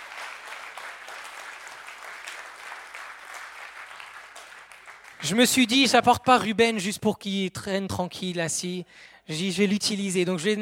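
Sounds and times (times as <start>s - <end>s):
audience applause: 0.0s - 5.4s
speech: 5.2s - 10.5s.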